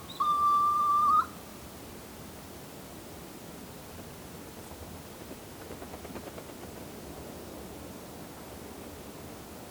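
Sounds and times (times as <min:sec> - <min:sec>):
soft-plumaged petrel Pterodroma mollis giving a long steady whistle: 0:00.0 - 0:01.3
faint background hiss: 0:00.0 - 0:09.6.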